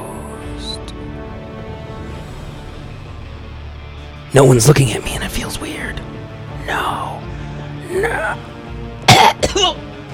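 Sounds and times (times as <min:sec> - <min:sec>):
speech: 0:04.3 - 0:06.0, 0:06.7 - 0:07.2, 0:07.9 - 0:08.5
single abrupt human cough with throat-clearing tail: 0:09.0 - 0:09.8.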